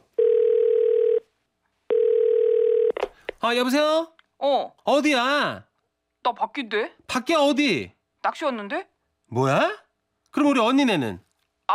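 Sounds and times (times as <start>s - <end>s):
telephone ringback tone of an outgoing call: 0.2s - 1.2s, 1.9s - 3.0s
speech: 3.4s - 11.7s.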